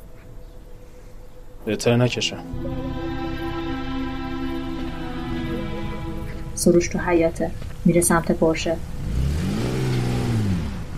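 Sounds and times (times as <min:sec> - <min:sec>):
speech: 0:01.6 - 0:02.8, 0:06.6 - 0:08.9
car engine revving as car pulls up: 0:02.4 - 0:10.9.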